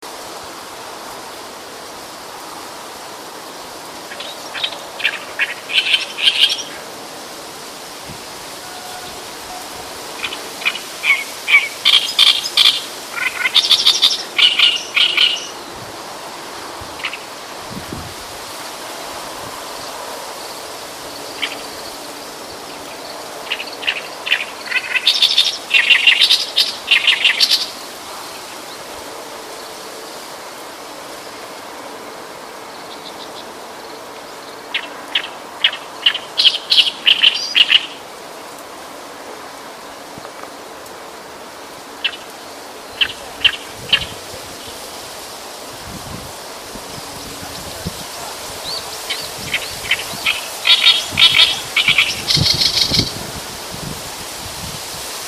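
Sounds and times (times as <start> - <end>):
yosikiri birds calling: 3.8 - 7.0, 8.5 - 15.8, 16.5 - 17.5, 19.7 - 30.4, 32.6 - 38.1, 41.7 - 45.0, 46.9 - 53.2.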